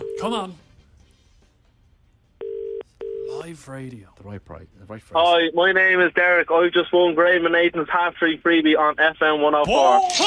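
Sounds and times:
speech: 0:00.2 - 0:00.6, 0:03.4 - 0:10.2
steady telephone tone: 0:02.4 - 0:03.4.

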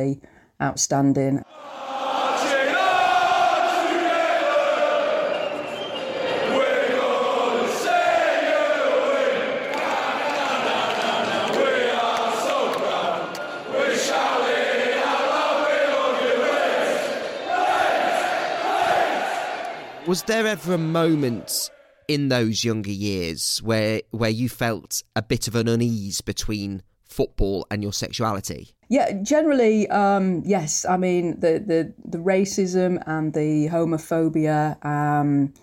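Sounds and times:
speech: 0:00.0 - 0:01.9, 0:20.1 - 0:35.6
huge football stadium crowd chanting loudly: 0:01.5 - 0:22.0.

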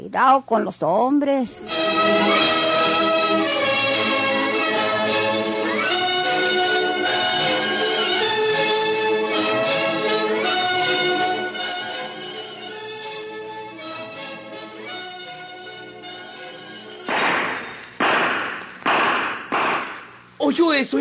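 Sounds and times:
speech: 0:00.1 - 0:02.6, 0:20.6 - 0:20.9
tonal musical passage: 0:01.6 - 0:20.3
gunshots at a cabin: 0:17.1 - 0:20.2.

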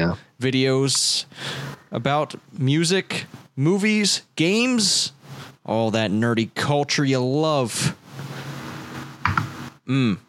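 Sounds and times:
speech: 0:00.0 - 0:08.0, 0:09.9 - 0:10.2
soft computer keyboard typing: 0:09.2 - 0:09.5.

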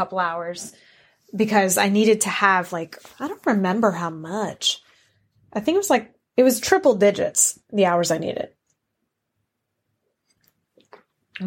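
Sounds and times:
speech: 0:00.0 - 0:04.8, 0:05.5 - 0:08.6
wet mouth clicks while sipping water: 0:10.3 - 0:11.4.

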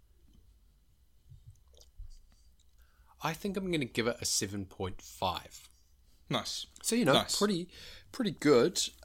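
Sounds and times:
person sipping lager: 0:01.5 - 0:02.9
soft slurping and mouth sounds: 0:01.5 - 0:03.0
speech: 0:03.2 - 0:05.7, 0:06.3 - 0:09.0.

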